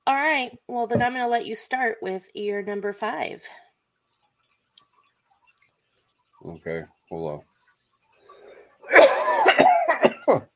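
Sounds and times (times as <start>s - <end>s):
speech: 0.0s - 3.6s, 6.4s - 7.5s, 10.3s - 10.5s
person coughing with a throat-clearing quality: 8.9s - 10.4s.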